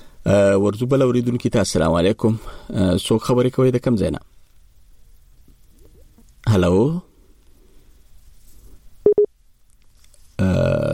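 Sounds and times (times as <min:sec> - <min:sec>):
speech: 0:00.2 - 0:04.3, 0:06.5 - 0:07.1
telephone busy tone beeps after a call line drops: 0:09.1 - 0:09.3.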